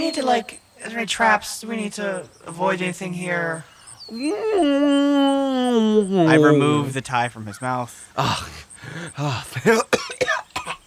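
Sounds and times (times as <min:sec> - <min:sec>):
speech: 0:00.0 - 0:10.4
voice imitating a cat hacking up a golden hairball: 0:09.6 - 0:10.8.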